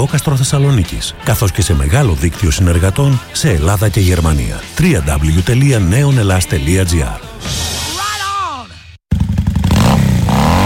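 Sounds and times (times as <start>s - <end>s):
speech: 0.0s - 7.8s
motorcycle engine revving: 9.1s - 10.6s.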